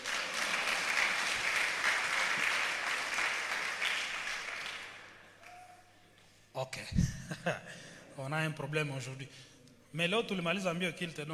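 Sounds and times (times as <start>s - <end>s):
audience applauding and cheering: 0.0s - 5.9s
speech: 6.6s - 11.3s.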